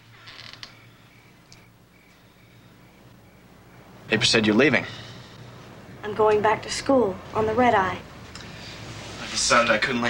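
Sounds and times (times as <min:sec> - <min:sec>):
door creaking open: 0:00.0 - 0:00.9
speech: 0:04.1 - 0:05.0, 0:06.1 - 0:08.1, 0:09.4 - 0:10.0.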